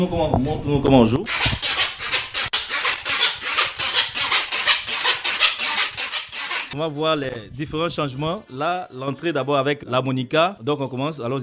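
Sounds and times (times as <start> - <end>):
speech: 0.0 - 1.6, 6.8 - 11.4
iron rod scraped along saw teeth: 1.3 - 6.8.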